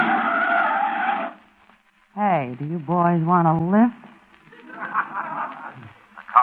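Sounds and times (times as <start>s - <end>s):
Cadillac tires skidding to a stop on a dusty Kansas road: 0.0s - 1.4s
speech: 2.4s - 4.0s
laughter: 4.4s - 6.3s.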